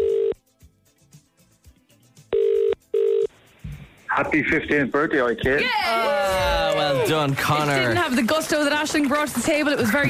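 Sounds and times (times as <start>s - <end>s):
outgoing call ringing tone heard down a phone line: 0.0s - 0.4s, 2.3s - 3.3s
speech: 4.2s - 10.0s.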